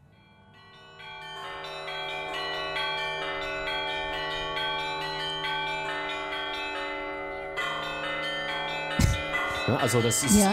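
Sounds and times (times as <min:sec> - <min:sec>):
church bells rung by a bell-ringer working the bells with cords: 0:00.0 - 0:10.5
speech: 0:09.7 - 0:10.5.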